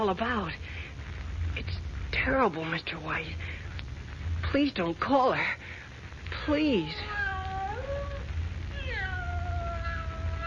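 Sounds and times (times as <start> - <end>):
speech: 0.0 - 0.7, 1.6 - 3.6, 4.5 - 5.8, 6.4 - 7.2
low rumble: 0.0 - 10.4
cat meowing plaintively: 6.8 - 10.4.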